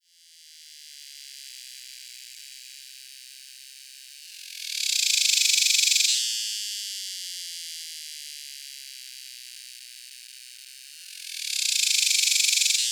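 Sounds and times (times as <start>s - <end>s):
Neotibicen superbus cicadas calling: 4.5s - 6.1s, 11.2s - 12.8s.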